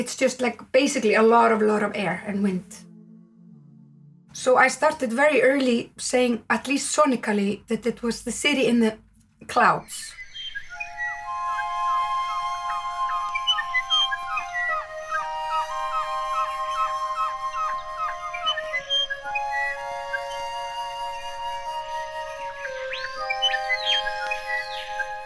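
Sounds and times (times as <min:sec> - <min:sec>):
speech: 0:00.0 - 0:02.9, 0:04.4 - 0:10.2
bird-like chirps and whistles in music: 0:09.8 - 0:25.2
layered flutes playing: 0:10.5 - 0:25.2.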